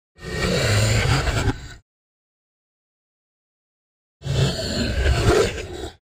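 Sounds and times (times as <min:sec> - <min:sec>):
monster breathing: 0:00.2 - 0:01.8, 0:04.2 - 0:06.0.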